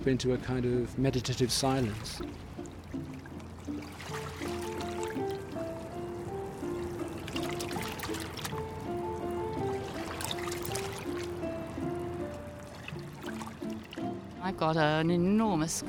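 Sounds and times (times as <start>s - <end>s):
speech: 0.0s - 3.1s, 14.6s - 15.8s
river water rushing: 1.8s - 14.4s.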